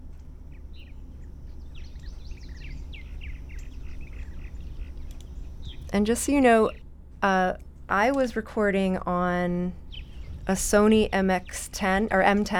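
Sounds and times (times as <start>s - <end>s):
steady low rumbling noise: 0.0s - 12.5s
Purple Martin chattering: 0.7s - 6.8s, 9.4s - 12.5s
speech: 5.9s - 9.8s, 10.5s - 12.5s.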